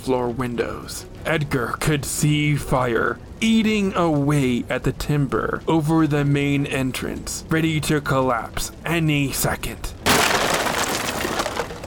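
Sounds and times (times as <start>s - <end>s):
speech: 0.0s - 10.0s
debris crashing in an explosion: 10.0s - 11.8s
glass shattering as a burning bank floor explodes: 10.1s - 11.8s.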